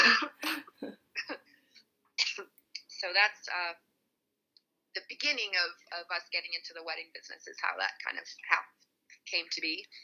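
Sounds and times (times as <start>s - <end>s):
harsh coughs: 0.0s - 1.4s
speech: 3.1s - 3.9s, 5.0s - 8.7s, 9.3s - 10.0s.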